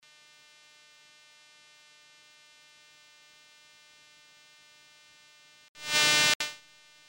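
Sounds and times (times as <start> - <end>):
hum recorded on Sony HVR V1U video camera: 5.8 - 7.0.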